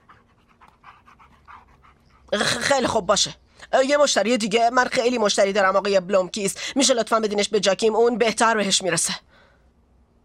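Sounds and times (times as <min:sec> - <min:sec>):
dog panting: 0:00.0 - 0:02.3
speech: 0:02.3 - 0:09.3.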